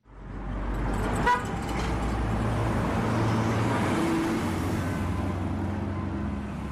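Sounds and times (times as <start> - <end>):
city traffic: 0.0 - 6.7
minibus taxi engine rumbling driving through city traffic: 0.0 - 6.7.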